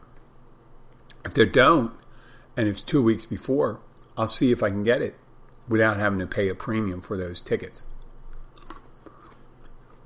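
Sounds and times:
speech: 0:01.2 - 0:02.0, 0:02.6 - 0:07.9
crunching and munching food: 0:07.8 - 0:10.0.

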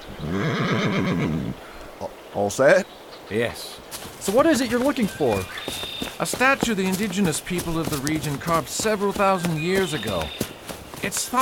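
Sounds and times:
horse neighing: 0:00.2 - 0:01.6
speech: 0:00.3 - 0:11.4.

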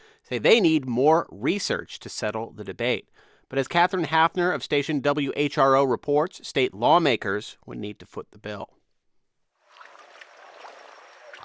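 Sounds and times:
speech: 0:00.3 - 0:08.8
boat cutting across open water with spray and hull splash: 0:09.7 - 0:11.4.

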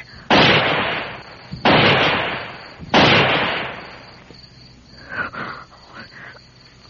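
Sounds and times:
gunshots fired into the air: 0:00.3 - 0:04.2.

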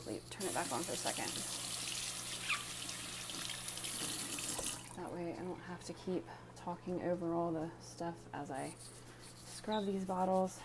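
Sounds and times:
speech: 0:00.0 - 0:01.6, 0:05.0 - 0:09.0, 0:09.6 - 0:10.6
tap water running into baby bottles: 0:00.2 - 0:05.5.

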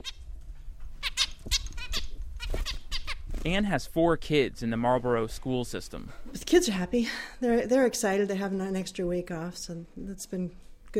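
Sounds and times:
pet tropical birds fluttering in a big white cage: 0:00.0 - 0:03.6
pet tropical birds squawking in a cage: 0:01.0 - 0:03.3
speech: 0:03.4 - 0:10.9.

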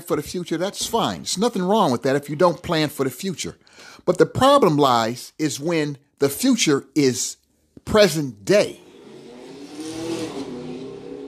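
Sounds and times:
speech: 0:00.1 - 0:08.8
car engine revving as it races down a street: 0:08.7 - 0:11.2.

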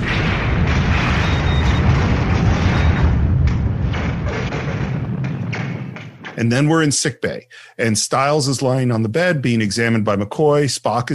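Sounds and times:
sci-fi sound effect of a spaceship exploding: 0:00.0 - 0:06.4
speech: 0:06.4 - 0:11.1.

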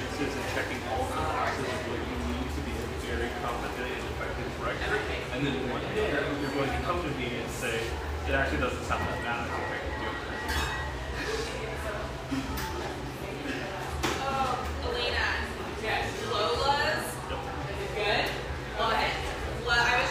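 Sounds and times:
murmur of many voices in an espresso bar in San Francisco: 0:00.0 - 0:20.1
cup clinks in an espresso bar: 0:09.5 - 0:11.2.

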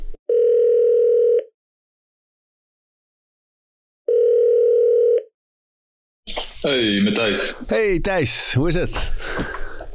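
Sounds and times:
outgoing phone call electronic ringback tone: 0:00.3 - 0:01.5, 0:04.1 - 0:05.3
speech: 0:06.6 - 0:09.6.

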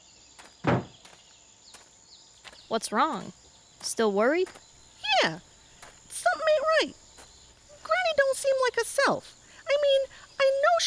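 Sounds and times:
faint footsteps: 0:00.4 - 0:08.5
door thudding shut: 0:00.6 - 0:01.0
speech: 0:02.7 - 0:05.5, 0:06.8 - 0:07.0, 0:08.4 - 0:10.1.

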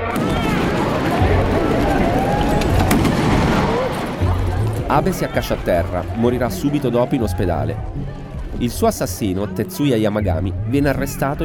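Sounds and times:
single sharp gunshot at outdoor political rally: 0:00.0 - 0:04.6
outdoor crowd murmuring: 0:00.0 - 0:11.4
scattered voices: 0:00.0 - 0:11.4
speech: 0:04.9 - 0:11.4.

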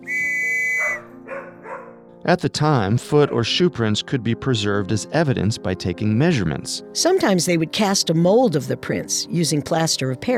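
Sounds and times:
long steady high whistle: 0:00.0 - 0:01.1
dogs barking and yelping: 0:00.1 - 0:02.0
speech: 0:02.3 - 0:10.3.

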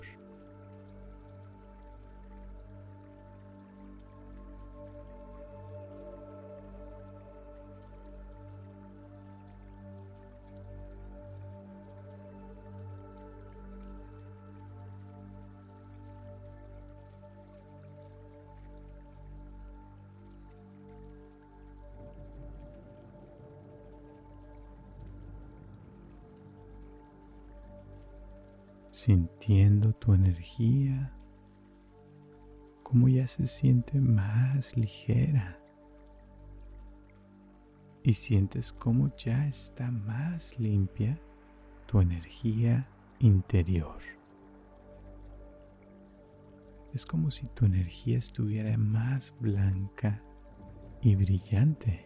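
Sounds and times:
steady rain: 0:00.0 - 0:52.0
water drips: 0:00.0 - 0:52.0
speech: 0:29.0 - 0:31.2, 0:32.9 - 0:35.6, 0:38.0 - 0:41.3, 0:41.9 - 0:44.2, 0:47.0 - 0:50.3, 0:51.0 - 0:52.0.

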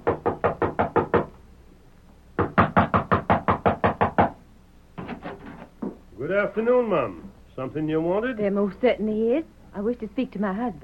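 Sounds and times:
sharp knocking on a wooden door: 0:00.0 - 0:01.4, 0:02.4 - 0:04.4
speech: 0:06.3 - 0:10.8.

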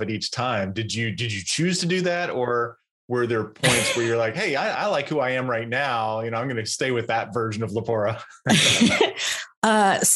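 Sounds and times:
speech: 0:00.0 - 0:10.1
person clearing throat: 0:03.6 - 0:04.4
person coughing: 0:03.6 - 0:04.5
laughter: 0:03.6 - 0:05.0, 0:07.4 - 0:09.5.

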